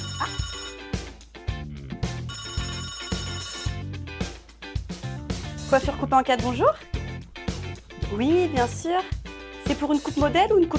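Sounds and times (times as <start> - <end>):
telephone ringing with bright melodic electronic ringtone: 0.0 - 1.0, 2.3 - 4.0
speech: 5.7 - 6.9, 8.1 - 10.7.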